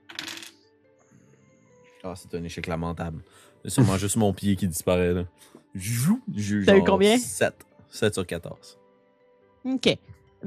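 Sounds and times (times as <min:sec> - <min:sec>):
die clattering onto a hard tabletop: 0:00.1 - 0:00.5
speech: 0:02.0 - 0:08.8, 0:09.6 - 0:10.4
laughter: 0:03.7 - 0:04.5.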